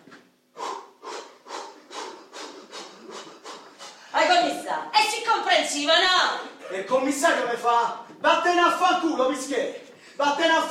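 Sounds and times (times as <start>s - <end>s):
rhythmic forceful breathy huffs of hospital breathing exercises: 0.5s - 4.3s
speech: 4.2s - 10.7s.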